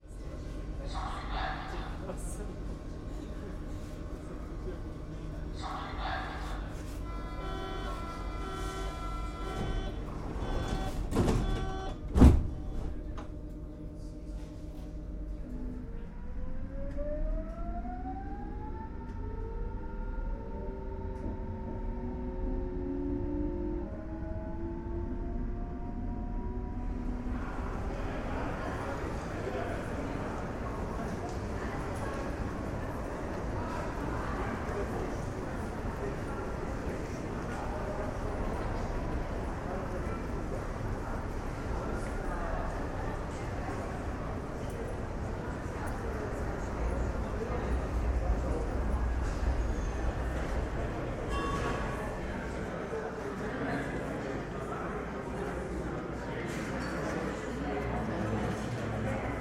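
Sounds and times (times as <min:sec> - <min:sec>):
Berlin city ambience: 0:00.0 - 0:59.3.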